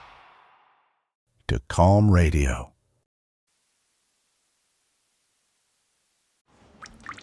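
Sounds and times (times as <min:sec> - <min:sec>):
speech: 0:01.5 - 0:02.7
water dripping from a ceiling vent: 0:06.7 - 0:07.2.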